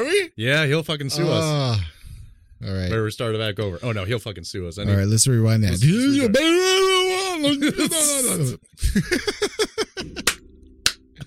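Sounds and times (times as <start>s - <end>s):
speech: 0.2s - 2.0s, 2.6s - 10.3s
high wavering laughter: 7.5s - 10.3s
sharp hand claps: 10.2s - 11.2s.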